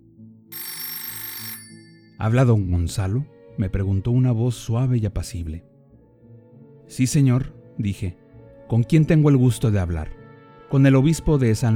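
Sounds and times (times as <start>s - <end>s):
telephone bell ringing: 0.5s - 2.3s
speech: 2.2s - 5.7s, 7.0s - 11.7s.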